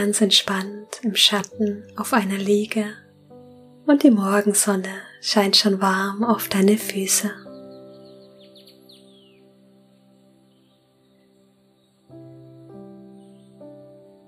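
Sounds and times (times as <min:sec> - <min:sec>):
speech: 0:00.0 - 0:03.0, 0:03.9 - 0:07.4
bird chirps and trills outdoors: 0:06.4 - 0:12.1.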